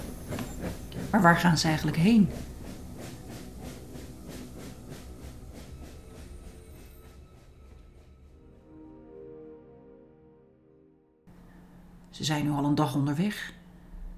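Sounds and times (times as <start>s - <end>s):
train rolling along the rails: 0.0s - 8.4s
speech: 1.1s - 2.5s, 12.2s - 13.6s.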